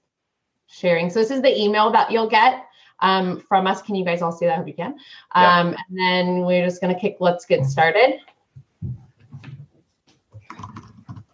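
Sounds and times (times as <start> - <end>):
speech: 0.7 - 9.0
typing a name on a computer keyboard: 10.5 - 11.3.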